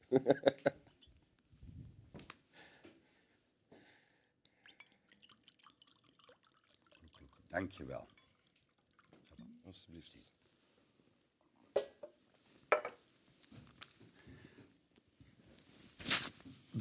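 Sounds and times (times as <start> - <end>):
laughter: 0.0 - 0.8
speech: 0.1 - 0.6, 7.8 - 8.2, 9.7 - 10.4
water pouring into a glass: 4.5 - 10.3.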